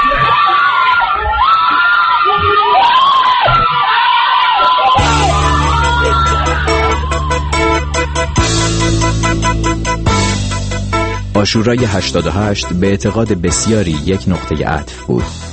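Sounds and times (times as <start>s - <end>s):
crowd screaming and shouting at a street protest: 0.0s - 10.5s
steady music track: 5.0s - 15.5s
speech: 11.4s - 15.5s.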